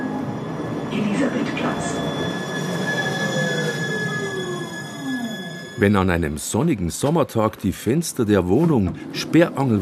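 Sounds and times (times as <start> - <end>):
route 27 tram wheels squealing on rails in Munich's Maxvorstadt: 0.0 - 7.2
speech: 0.9 - 2.4, 5.8 - 9.8.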